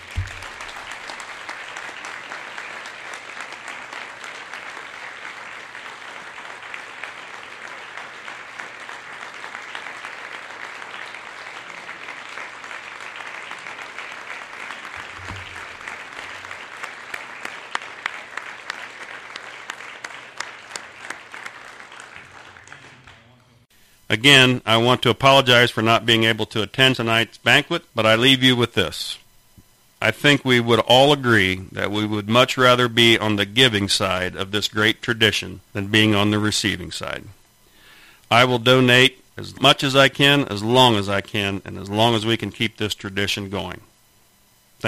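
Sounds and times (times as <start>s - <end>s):
sustained audience applause: 0.0s - 23.6s
speech: 24.1s - 29.2s, 30.0s - 37.4s, 38.3s - 43.9s.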